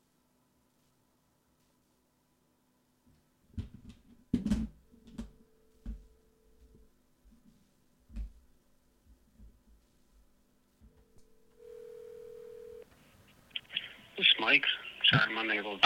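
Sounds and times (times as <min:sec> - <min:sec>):
quiet hiss: 0:00.0 - 0:15.8
electronic phone ring tone on the line: 0:11.2 - 0:12.9
speech: 0:14.4 - 0:15.8.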